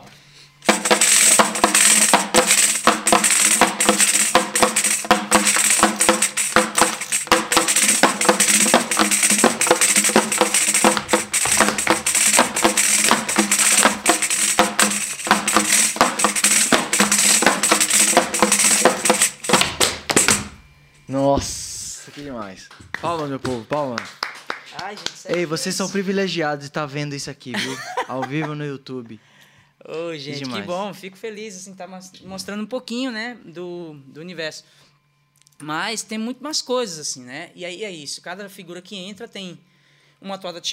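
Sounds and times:
rhythmic trupé dance foot stomping: 0:00.6 - 0:20.7, 0:21.3 - 0:21.7, 0:22.3 - 0:26.1
speech: 0:23.2 - 0:24.1, 0:24.9 - 0:29.3, 0:29.9 - 0:34.8, 0:35.6 - 0:40.7
laughter: 0:27.5 - 0:28.7.

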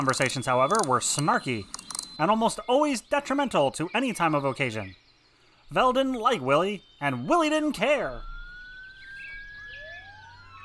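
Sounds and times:
sirens wailing: 0:00.0 - 0:03.5, 0:05.7 - 0:10.6
speech: 0:00.0 - 0:05.0, 0:05.7 - 0:08.3.

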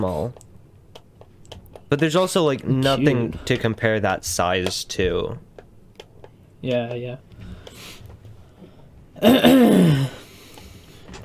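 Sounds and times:
speech: 0:00.0 - 0:00.5, 0:01.9 - 0:05.5, 0:06.6 - 0:08.0, 0:09.2 - 0:10.2
throat clearing with a rough descending rasp: 0:09.2 - 0:10.2.

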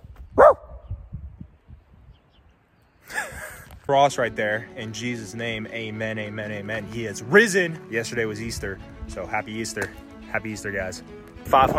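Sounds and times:
dog barking: 0:00.4 - 0:00.8
speech: 0:03.9 - 0:11.7.

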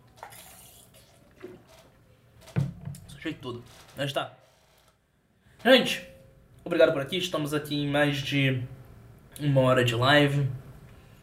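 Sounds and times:
person quickly drinking water: 0:00.0 - 0:02.1
speech: 0:03.2 - 0:04.4, 0:05.6 - 0:06.1, 0:06.7 - 0:08.8, 0:09.4 - 0:10.6.

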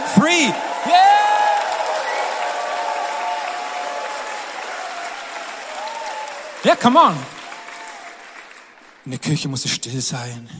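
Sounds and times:
large crowd cheering and shouting loudly: 0:00.0 - 0:08.4
applause: 0:00.0 - 0:10.3
speech: 0:00.2 - 0:01.1, 0:06.7 - 0:07.4, 0:09.0 - 0:10.5.

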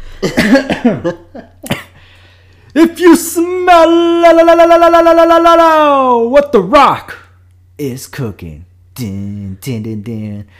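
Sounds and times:
person clearing throat with guttural rasps and a forceful hack: 0:00.0 - 0:02.0
speech: 0:00.2 - 0:01.5, 0:02.8 - 0:07.2, 0:07.8 - 0:10.5.

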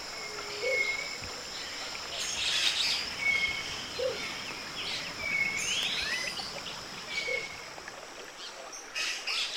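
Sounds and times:
insect hum in a tropical forest: 0:00.0 - 0:09.5
cinnamon-crowned motmot calling: 0:00.2 - 0:01.2, 0:02.4 - 0:06.5, 0:07.1 - 0:07.6.

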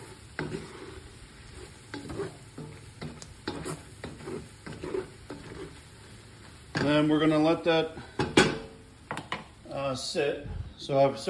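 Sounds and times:
spoon stirring flour into a batter-like mixture: 0:00.0 - 0:07.0
speech: 0:06.9 - 0:08.1, 0:09.9 - 0:11.2.

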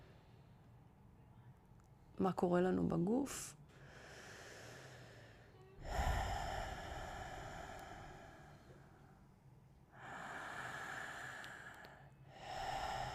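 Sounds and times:
speech: 0:02.2 - 0:03.6
slow deep breathing during a guided breathing exercise: 0:03.7 - 0:13.1.

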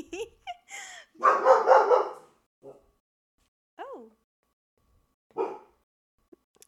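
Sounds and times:
dog giving sharp gruff barks: 0:01.2 - 0:02.9, 0:05.3 - 0:05.8.

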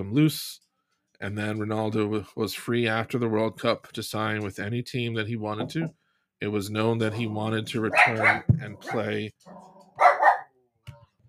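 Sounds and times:
speech: 0:00.0 - 0:00.6, 0:01.2 - 0:10.1
upset dog barking: 0:07.9 - 0:10.6.

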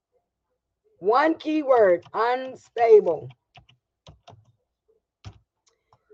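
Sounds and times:
speech: 0:01.0 - 0:03.4
computer keyboard keystrokes clacking: 0:01.9 - 0:02.3, 0:03.2 - 0:04.6, 0:05.2 - 0:06.1.

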